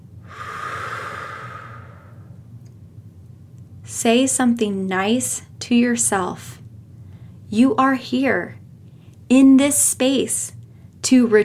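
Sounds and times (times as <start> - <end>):
deep breath in and out during a guided relaxation exercise: 0.2 - 2.4
speech: 3.9 - 6.6, 7.5 - 8.6, 9.3 - 11.4.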